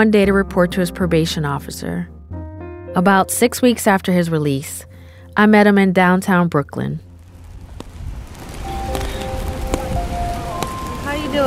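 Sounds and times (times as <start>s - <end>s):
speech: 0.0s - 2.2s, 3.0s - 7.1s
low rumble of traffic: 6.8s - 11.4s
rain pattering on a city street: 7.1s - 11.4s.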